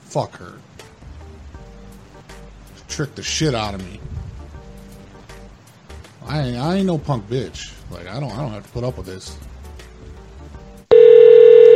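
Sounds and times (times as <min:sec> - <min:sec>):
low noise: 0:00.0 - 0:11.7
speech: 0:00.1 - 0:00.7, 0:03.0 - 0:04.1, 0:06.3 - 0:09.5
electronic telephone ring: 0:10.9 - 0:11.7.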